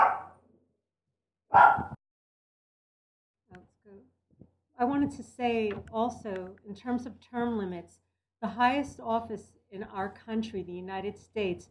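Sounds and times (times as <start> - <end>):
babysat dogs barking: 0.0 - 0.4, 1.5 - 2.0
speech: 4.8 - 11.6.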